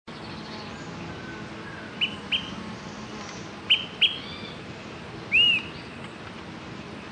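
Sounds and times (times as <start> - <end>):
Smoke-colored pewee subspecies zarumae calling: 3.7 - 4.6, 5.3 - 5.8.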